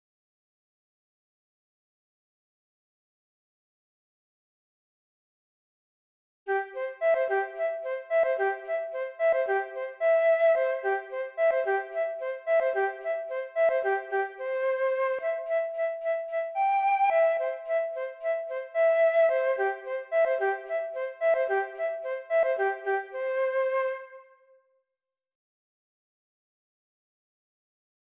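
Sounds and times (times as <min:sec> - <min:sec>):
flute in the key of C: 0:06.5 - 0:24.6.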